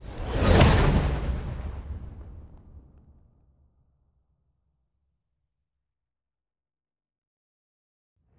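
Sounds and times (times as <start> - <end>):
science ship moving: 0.0 - 2.2.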